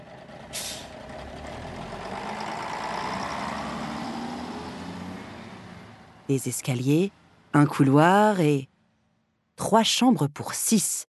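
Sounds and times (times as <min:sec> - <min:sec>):
bus engine droning while driving: 0:00.0 - 0:09.3
bus air brake hiss: 0:00.5 - 0:00.9
speech: 0:06.3 - 0:08.7, 0:09.6 - 0:11.0.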